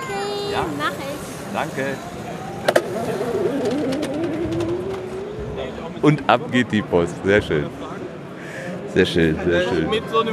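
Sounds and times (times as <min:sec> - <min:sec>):
go-kart motor whining on a go-kart track: 0:00.0 - 0:06.0
speech: 0:00.6 - 0:02.4, 0:06.0 - 0:07.8, 0:09.0 - 0:10.3.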